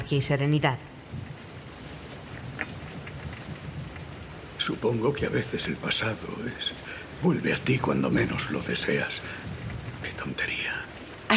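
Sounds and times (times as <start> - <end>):
heavy rain pouring down glass windows: 0.0 - 11.3
speech: 0.1 - 1.2, 4.7 - 9.5, 10.2 - 11.3.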